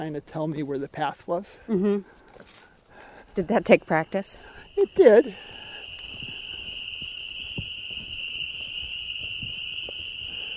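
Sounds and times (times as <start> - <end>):
speech: 0.0 - 2.7, 3.4 - 5.5
spring peeper frogs calling in chorus: 3.5 - 8.0.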